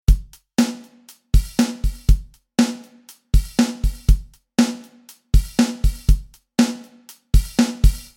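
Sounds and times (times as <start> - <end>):
Maroon drums: 0.0 - 8.1.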